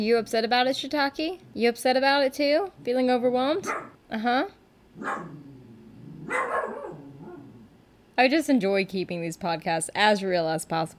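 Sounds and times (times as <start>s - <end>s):
speech: 0.0s - 5.4s, 6.3s - 6.8s, 8.2s - 10.9s
dog barking out the window: 3.6s - 4.0s, 5.0s - 5.4s, 6.2s - 7.4s.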